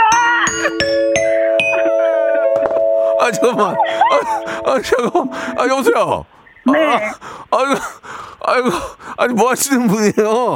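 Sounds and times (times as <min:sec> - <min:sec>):
bright ding-dong-dang approval bell chime: 0:00.1 - 0:06.0
speech: 0:03.3 - 0:10.5.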